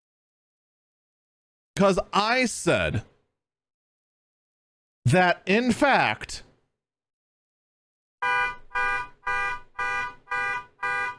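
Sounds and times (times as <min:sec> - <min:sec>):
speech: 0:01.8 - 0:03.1, 0:05.0 - 0:06.4
car alarm honking outside a window: 0:08.2 - 0:11.1.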